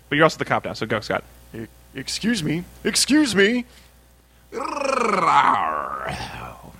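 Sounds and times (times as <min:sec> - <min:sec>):
speech: 0:00.1 - 0:03.8, 0:04.5 - 0:06.4
person imitating a lion waking up with a drowsy growl: 0:04.5 - 0:06.7.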